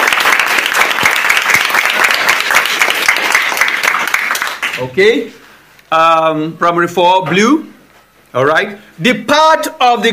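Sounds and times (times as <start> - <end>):
room full of people clapping in a classroom: 0.0 - 5.0
speech: 4.8 - 10.1.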